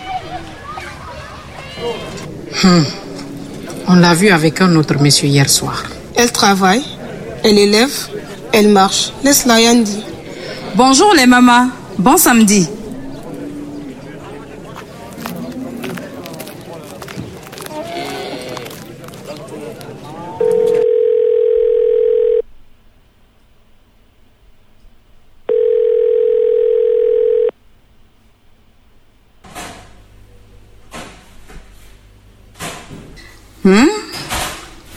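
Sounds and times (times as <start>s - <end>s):
speech: 1.8s - 3.0s, 3.9s - 10.1s, 10.8s - 12.8s
telephone ringing with an incoming call in electronic tones: 20.4s - 22.5s, 25.5s - 27.6s.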